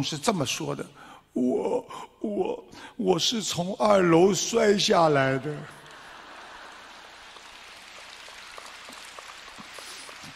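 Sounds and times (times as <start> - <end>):
speech: 0.0 - 5.8
faint scattered applause from a distant audience: 5.7 - 10.3.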